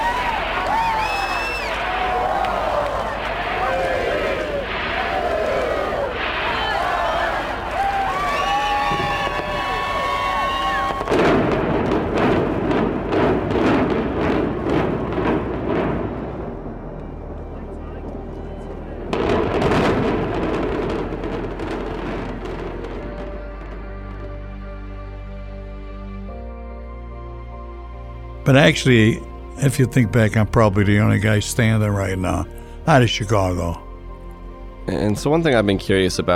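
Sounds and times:
whistles: 0.0s - 11.1s
crowd voices: 0.0s - 11.2s, 16.6s - 19.7s
crowd cheering: 0.0s - 23.6s
booming noise: 0.0s - 24.6s
demolition blasts of casino building implosion: 0.0s - 24.6s
speech: 28.5s - 33.8s, 34.9s - 36.3s.

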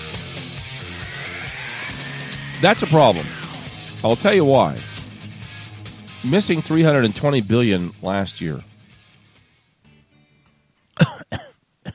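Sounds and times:
speech: 2.6s - 3.4s, 4.0s - 4.9s, 6.2s - 8.7s
person coughing harshly as if choking: 11.0s - 11.9s.

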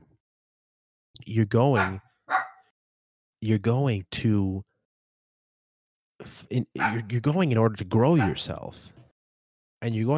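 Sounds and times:
speech: 1.3s - 2.1s, 3.4s - 4.7s, 6.2s - 9.0s, 9.8s - 10.1s
dog barking: 1.8s - 2.7s, 6.8s - 7.1s, 8.2s - 8.5s.

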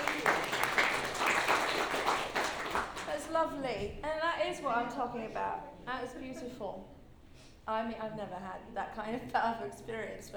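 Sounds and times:
crowd applauding: 0.0s - 3.2s
speech: 3.5s - 7.0s, 7.7s - 10.3s.

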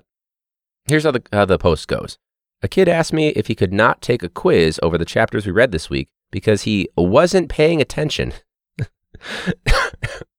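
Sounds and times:
speech: 0.9s - 10.3s
person coughing harsh raspy chesty coughs: 8.8s - 10.3s.

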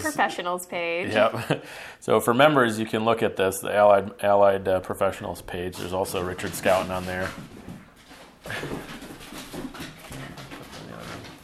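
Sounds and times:
speech: 0.0s - 7.6s, 8.4s - 8.9s
several dogs panting: 5.8s - 11.4s.

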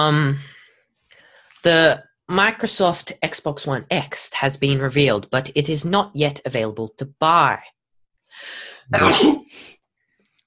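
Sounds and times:
speech: 0.0s - 0.5s, 1.6s - 9.7s
person sneezing: 8.9s - 9.6s.

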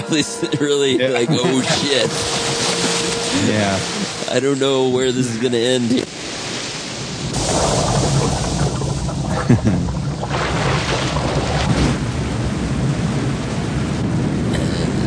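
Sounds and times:
laughter: 0.0s - 6.1s, 9.3s - 10.0s
speech: 0.1s - 2.6s, 3.4s - 6.2s, 9.5s - 10.0s
roar of rushing water: 1.5s - 15.0s.

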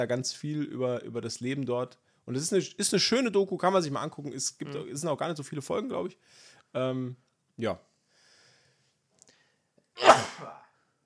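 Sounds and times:
speech: 0.0s - 7.9s
person sneezing: 10.0s - 10.8s.

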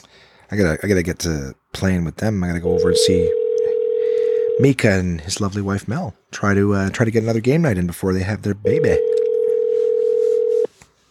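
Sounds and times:
speech: 0.5s - 3.4s, 4.6s - 9.2s
steady electronic telephone ringing tone on a phone line: 2.7s - 4.8s, 8.7s - 10.7s.

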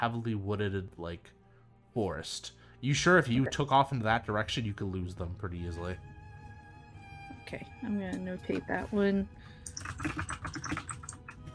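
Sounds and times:
speech: 0.0s - 1.4s, 2.0s - 6.1s, 7.5s - 10.8s
clacky typing on a computer keyboard: 9.6s - 11.3s.

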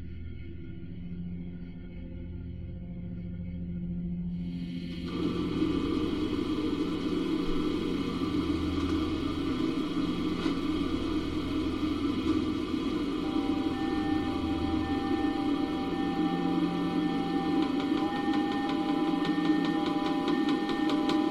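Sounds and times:
low droning hum in a sleep chamber: 0.0s - 21.3s
thin sustained whines: 4.5s - 21.3s.

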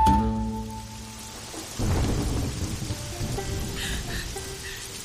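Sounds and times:
steady hissing rain pouring down: 0.1s - 5.0s
deep rumble of thunder: 0.9s - 5.0s.

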